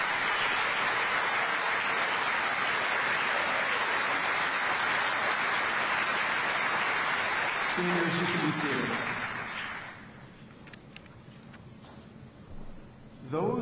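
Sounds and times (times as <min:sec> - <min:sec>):
large audience applauding for students: 0:00.0 - 0:10.3
speech: 0:07.8 - 0:09.2, 0:13.3 - 0:13.6.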